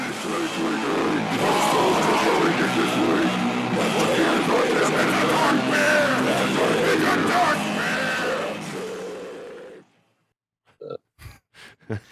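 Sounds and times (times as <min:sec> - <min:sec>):
loud raspy distorted scream jingle: 0:00.4 - 0:09.8.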